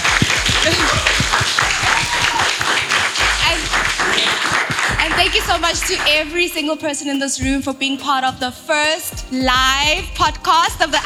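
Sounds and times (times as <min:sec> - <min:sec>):
live audience applause: 0:00.0 - 0:06.2
voices murmuring and cheering: 0:00.0 - 0:11.0
speech: 0:05.6 - 0:11.0.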